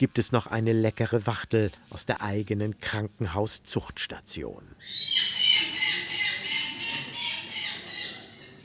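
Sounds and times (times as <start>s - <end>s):
speech: 0.0s - 5.7s
falcon calling with harsh rasping squawks after anaesthesia: 4.8s - 8.4s.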